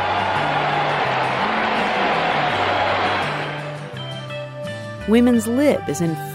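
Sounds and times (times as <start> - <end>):
large crowd roaring and cheering at a racetrack: 0.0 - 4.5
speech: 5.1 - 6.3.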